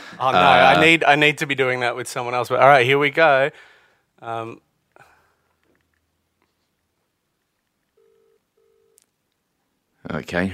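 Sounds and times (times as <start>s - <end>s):
speech: 0.2s - 4.6s, 10.1s - 10.5s
phone line ringback tone on an outgoing call: 8.0s - 9.0s.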